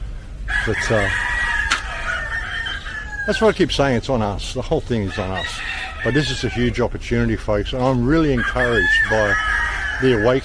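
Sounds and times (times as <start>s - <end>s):
steady low outdoor rumble: 0.0s - 10.4s
rooster crowing: 0.5s - 3.6s, 5.1s - 6.8s, 8.3s - 10.4s
speech: 0.7s - 1.3s, 3.2s - 10.4s.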